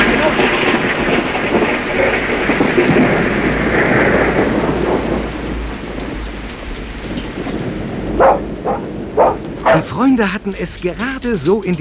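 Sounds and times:
deep rolling thunder: 0.0s - 11.5s
heavy rain downpour in a thunderstorm: 0.0s - 11.7s
speech: 10.0s - 11.7s.

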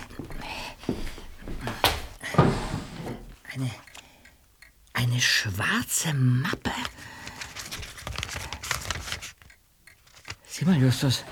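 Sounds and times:
short wooden scrapes and knocks of a desk drawer: 1.9s - 3.4s
desk drawer being pulled open: 2.3s - 3.4s
speech: 3.6s - 3.8s, 5.2s - 7.2s, 10.6s - 11.2s.

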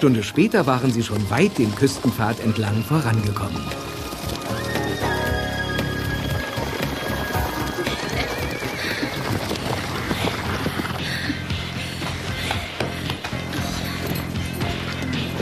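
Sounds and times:
speech: 0.0s - 4.0s
several horses' hooves trotting: 0.0s - 15.4s
horse neighing or whinnying: 1.2s - 12.8s.

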